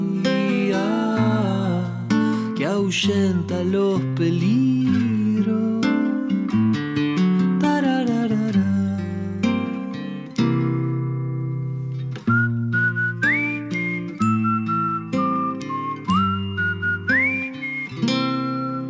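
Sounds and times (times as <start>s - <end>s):
steady instrumental music with struck chords: 0.0s - 18.8s
speech: 2.7s - 5.1s
person whistling a slow tune: 12.2s - 18.8s.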